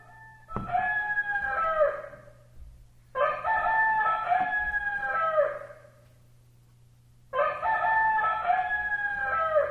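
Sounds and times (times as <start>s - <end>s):
rooster crowing: 0.0s - 2.5s, 3.1s - 6.0s, 7.3s - 9.6s
low steady hum: 0.0s - 9.6s.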